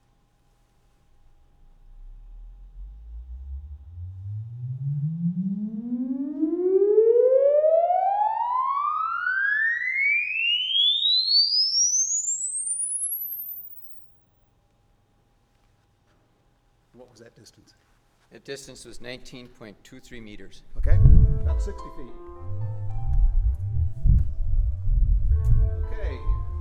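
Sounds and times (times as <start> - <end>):
sound system test tone sweep: 1.5 - 14.2, 20.8 - 26.5
speech: 17.4 - 22.3.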